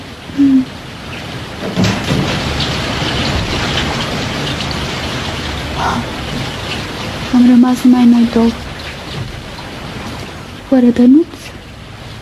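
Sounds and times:
rain pouring: 0.0 - 12.2
speech: 0.4 - 0.7, 7.6 - 8.6, 10.7 - 11.4
knocks: 1.6 - 3.9.

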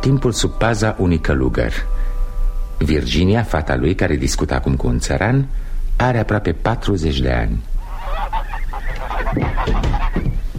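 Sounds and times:
speech: 0.0 - 2.1, 2.8 - 8.4
low noise: 0.0 - 10.5
geese honking: 7.8 - 10.5.

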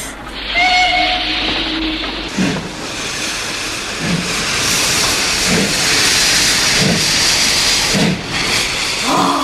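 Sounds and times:
steam train hissing steam at a station: 0.0 - 9.4
steam train whistle: 0.4 - 2.3.

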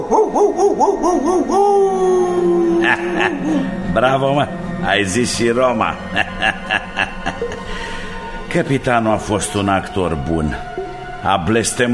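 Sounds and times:
dog yowling and howling: 0.0 - 3.4
speech: 0.1 - 7.8, 8.5 - 11.9.

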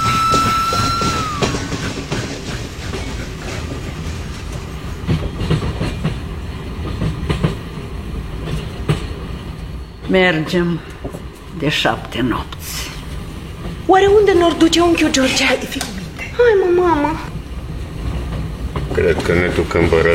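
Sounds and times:
high metallic squeal: 0.0 - 2.3
freight train rolling on rails: 0.0 - 20.1
speech: 10.1 - 10.9, 11.6 - 12.6, 13.9 - 17.3, 19.0 - 20.1.

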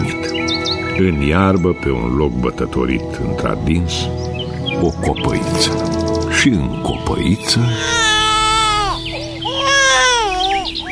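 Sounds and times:
speech: 1.0 - 8.0
infant in a small tub in the grass whimpering and crying: 7.6 - 10.9.

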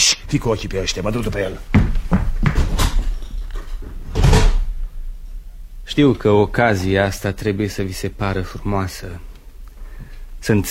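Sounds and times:
dull rumbling room background: 0.0 - 10.7
speech: 0.1 - 2.5, 6.0 - 9.3, 10.4 - 10.7
small knock and rattle: 1.7 - 4.6
door slamming shut: 4.1 - 4.7.

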